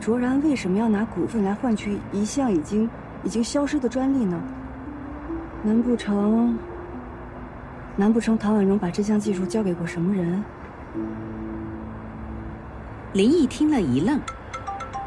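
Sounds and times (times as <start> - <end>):
speech: 0.0 - 4.6, 5.6 - 6.7, 8.0 - 11.4, 13.1 - 14.4
melodic phone ringtone for an incoming call: 4.4 - 8.0, 11.0 - 15.0.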